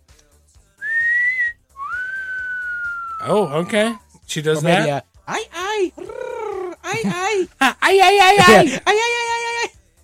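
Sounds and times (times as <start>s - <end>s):
person whistling a two-part catcall: 0.8s - 4.2s
speech: 3.2s - 6.2s, 6.9s - 9.2s.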